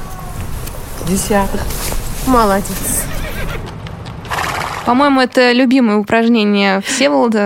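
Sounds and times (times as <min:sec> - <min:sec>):
rustling: 0:00.0 - 0:04.9
low noise: 0:00.0 - 0:07.4
speech: 0:01.1 - 0:03.2, 0:04.8 - 0:07.4
horse whinnying: 0:02.8 - 0:03.7.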